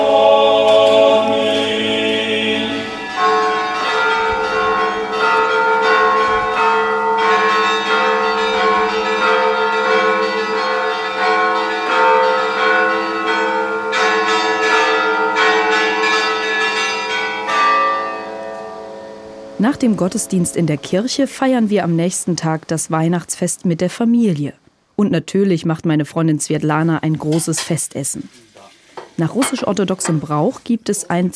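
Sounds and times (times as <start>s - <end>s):
several church bells ringing: 0.0s - 21.3s
speech: 19.8s - 28.6s, 29.2s - 31.3s.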